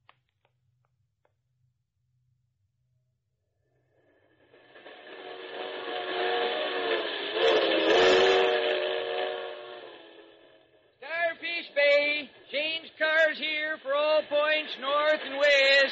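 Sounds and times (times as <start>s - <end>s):
steam train whistle blast: 4.6s - 15.9s
short rising-and-falling whistle-like toots: 5.2s - 10.1s.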